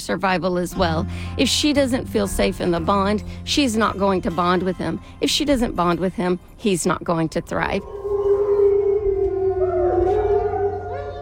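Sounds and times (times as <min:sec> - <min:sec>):
speech: 0:00.0 - 0:08.0
crepuscular wild canids howling in chorus: 0:07.8 - 0:11.2.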